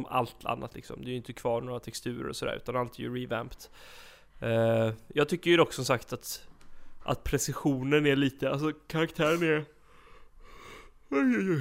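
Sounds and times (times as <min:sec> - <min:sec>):
speech: 0:00.0 - 0:09.8, 0:11.1 - 0:11.6
person yawning: 0:11.1 - 0:11.6.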